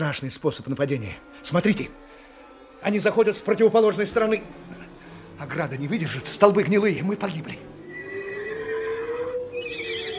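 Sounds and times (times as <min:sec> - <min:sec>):
speech: 0:00.0 - 0:02.2, 0:02.8 - 0:04.8, 0:05.4 - 0:07.7
low sustained tone: 0:00.0 - 0:10.1
horse whinnying: 0:07.8 - 0:10.1.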